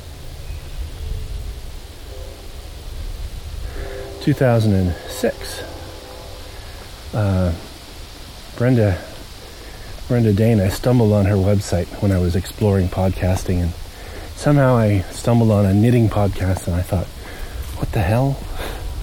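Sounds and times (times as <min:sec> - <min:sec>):
passing train rumbling: 0:00.0 - 0:08.0
train horn blasts: 0:01.9 - 0:07.0
speech: 0:04.2 - 0:05.7, 0:07.1 - 0:07.6, 0:08.6 - 0:09.1, 0:10.1 - 0:13.8, 0:14.4 - 0:17.2, 0:17.8 - 0:18.5.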